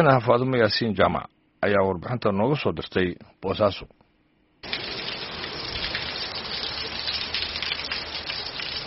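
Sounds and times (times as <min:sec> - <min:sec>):
speech: 0:00.0 - 0:04.0
heavy rain falling: 0:04.6 - 0:08.8.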